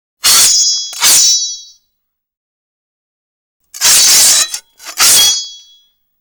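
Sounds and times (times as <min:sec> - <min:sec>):
metal shwing: 0:03.8 - 0:05.6.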